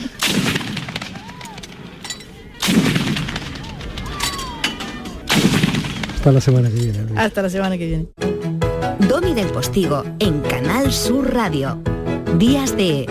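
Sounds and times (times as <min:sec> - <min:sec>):
heavy cannon shots: 0:00.0 - 0:02.0, 0:02.6 - 0:04.2, 0:05.2 - 0:06.6
speech: 0:06.2 - 0:08.3, 0:09.1 - 0:13.1.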